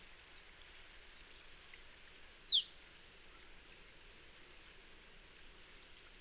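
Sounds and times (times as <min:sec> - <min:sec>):
faint steady hiss: 0:00.0 - 0:06.2
Poecile palustris marsh tit calling: 0:02.3 - 0:02.6.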